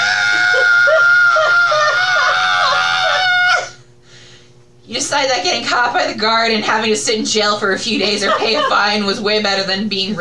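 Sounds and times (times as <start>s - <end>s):
person screaming in fright: 0.0s - 3.8s
laughter: 0.3s - 3.5s, 7.9s - 9.2s
speech: 5.1s - 10.1s.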